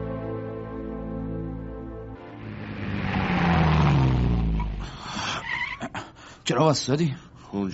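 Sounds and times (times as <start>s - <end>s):
car engine revving: 1.9s - 5.8s
harsh noisy roar: 2.2s - 5.8s
speech: 6.6s - 7.7s.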